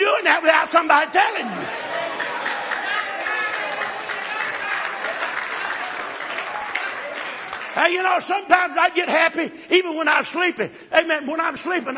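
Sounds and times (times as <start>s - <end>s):
speech: 0.8s - 1.9s, 7.8s - 11.9s
audience clapping in sustained applause: 1.6s - 8.2s.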